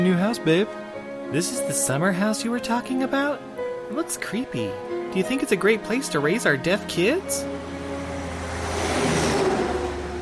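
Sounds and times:
speech: 0.0s - 7.7s
heavy truck rumbling past: 4.7s - 10.1s.

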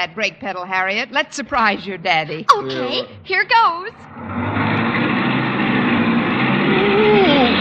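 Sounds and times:
speech: 0.0s - 5.2s
car engine roaring as the car drives off: 3.1s - 7.5s.

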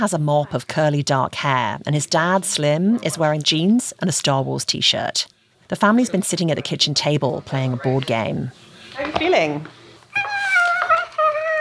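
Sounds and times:
speech: 0.0s - 9.8s
boy imitating a cat meowing at a kitchen table: 10.2s - 11.5s.

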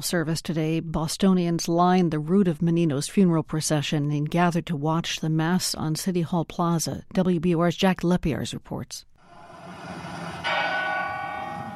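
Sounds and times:
speech: 0.0s - 9.1s
city bell tolling during a funeral in Boston: 9.3s - 11.7s.

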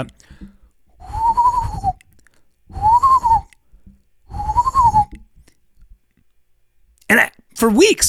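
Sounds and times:
speech: 0.0s - 0.6s, 7.6s - 8.0s
person imitating a breathy hollow whistle by blowing into a small object: 1.0s - 5.3s.

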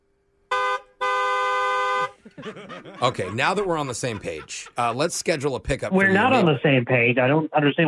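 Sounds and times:
car horn honking: 0.5s - 2.2s
laughter: 2.1s - 6.6s
speech: 2.4s - 7.8s.

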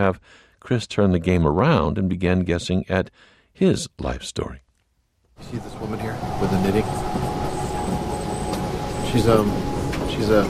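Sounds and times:
speech: 0.0s - 4.6s, 5.4s - 7.3s, 9.1s - 10.4s
high squeak: 5.4s - 10.4s
passenger train ride rumble: 5.4s - 10.4s.

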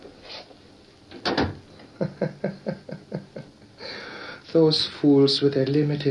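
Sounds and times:
door swinging shut: 1.1s - 1.6s
low chuckling: 1.9s - 3.8s
speech: 4.6s - 6.0s.

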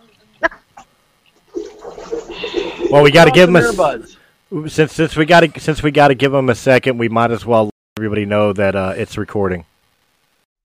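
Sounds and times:
water splashing in a bathtub while rinsing hair: 1.5s - 4.1s
speech: 2.9s - 9.7s.

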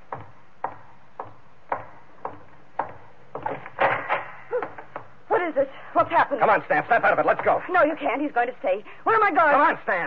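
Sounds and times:
clattering knocks and bangs: 0.0s - 5.2s
wooden thuds of a door being shut and barred: 0.0s - 5.2s
speech: 5.6s - 10.0s.

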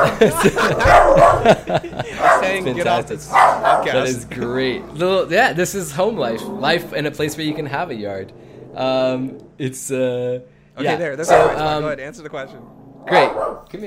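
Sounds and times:
pet dog barking and growling at home: 0.0s - 1.5s, 2.2s - 2.6s, 3.3s - 4.0s, 11.3s - 11.7s, 13.1s - 13.7s
people chuckling: 0.0s - 3.2s
speech: 0.0s - 13.8s.

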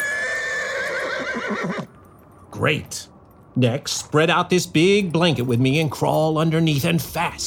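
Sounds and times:
horse whinnying: 0.0s - 1.9s
speech: 1.3s - 1.9s, 2.6s - 7.4s.

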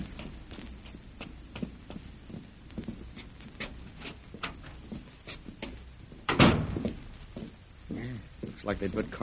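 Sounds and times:
heavy footsteps of people climbing a staircase: 0.0s - 9.2s
door knock or clunk: 6.3s - 6.9s
speech: 8.7s - 9.2s.

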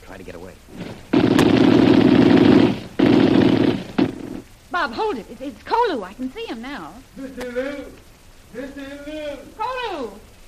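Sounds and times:
speech: 0.2s - 0.8s, 4.8s - 10.3s
rapid gunfire bursts fired over a man's head as a warning: 0.7s - 4.5s.

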